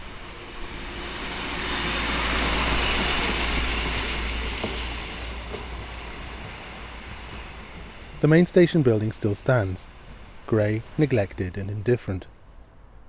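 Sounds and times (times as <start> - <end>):
local passenger train passing: 0.0 - 13.0
wheels clattering on the rails: 2.1 - 10.5
speech: 8.2 - 12.3.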